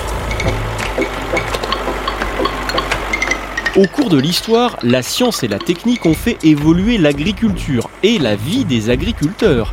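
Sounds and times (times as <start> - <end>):
tractor engine idling: 0.0 - 9.7
metallic clinks and knocks: 0.2 - 7.2
speech: 3.8 - 9.7.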